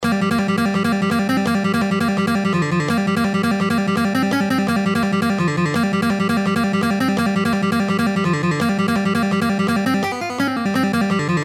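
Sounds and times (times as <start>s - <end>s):
guitar playing: 0.0s - 11.4s.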